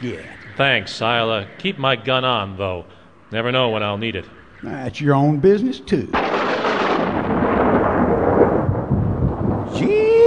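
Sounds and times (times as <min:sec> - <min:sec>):
speech: 0:00.0 - 0:06.4
loud rolling thunderclap: 0:06.1 - 0:10.2.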